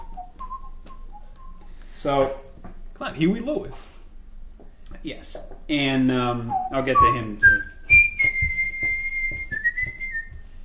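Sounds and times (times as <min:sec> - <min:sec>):
person whistling a tune: 0:00.0 - 0:01.8, 0:06.5 - 0:10.4
steady low thumping beat: 0:00.0 - 0:02.5, 0:06.3 - 0:10.5
speech: 0:02.0 - 0:02.4, 0:03.0 - 0:04.0, 0:05.0 - 0:07.8.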